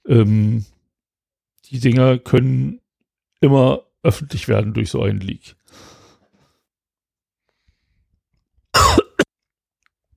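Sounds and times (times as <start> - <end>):
speech: 0.1 - 0.7, 1.6 - 2.8, 3.4 - 5.9
throat-clearing cough: 8.8 - 9.3.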